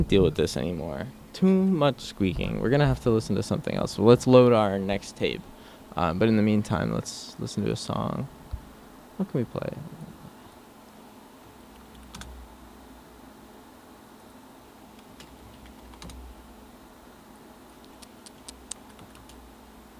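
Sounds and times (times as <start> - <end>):
speech: 0.0 - 8.4, 9.2 - 10.0
quiet hiss: 0.0 - 19.9
typing on a computer keyboard while searching for a song: 11.8 - 12.4, 15.0 - 16.2, 17.8 - 19.4.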